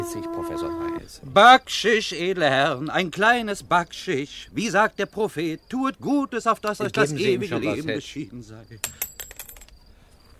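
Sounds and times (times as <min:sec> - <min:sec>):
speech: 0:00.0 - 0:09.1
gold coin dropping and bouncing: 0:08.8 - 0:09.8.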